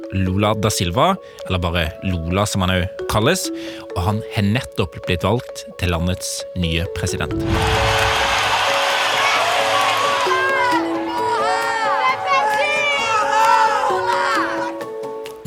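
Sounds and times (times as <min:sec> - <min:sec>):
speech: 0:00.1 - 0:08.2
large crowd cheering and shouting at election night rally: 0:07.4 - 0:14.8.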